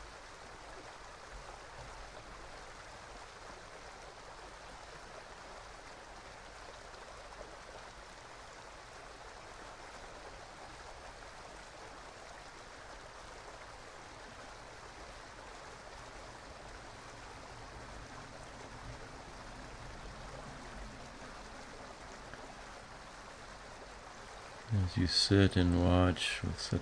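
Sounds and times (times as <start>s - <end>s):
mountain brook water rushing and babbling: 0.0s - 26.7s
speech: 24.8s - 26.7s.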